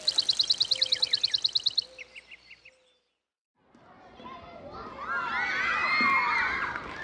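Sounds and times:
short bird trill: 0:00.0 - 0:03.2
crowd of children shrieking and shouting on a playground: 0:04.2 - 0:07.0.

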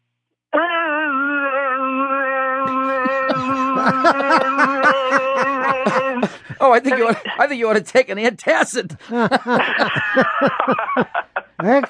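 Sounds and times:
voice imitating a car noise: 0:00.5 - 0:06.3
laughter: 0:02.6 - 0:07.5, 0:08.9 - 0:11.8
speech: 0:03.3 - 0:11.8.

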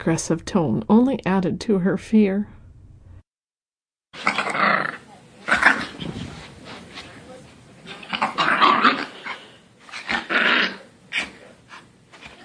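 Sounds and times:
speech: 0:00.0 - 0:02.6
frightened stray dog under a car gas pedal growling and snarling: 0:04.2 - 0:06.4, 0:07.9 - 0:11.4.

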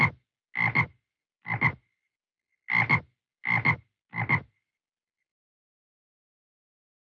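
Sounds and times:
frog croaking: 0:00.0 - 0:01.8, 0:02.7 - 0:04.5.

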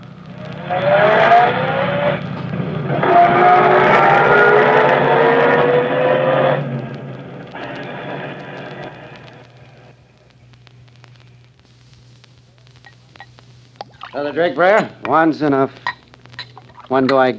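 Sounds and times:
car engine revving and pulling away through gear changes: 0:00.3 - 0:09.4
speech: 0:14.4 - 0:15.8, 0:16.9 - 0:17.3.

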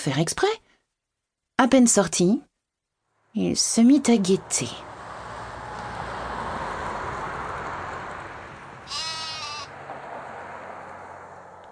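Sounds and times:
speech: 0:00.0 - 0:00.6, 0:01.6 - 0:02.5, 0:03.3 - 0:04.9
white sheep bleating: 0:08.8 - 0:09.7.

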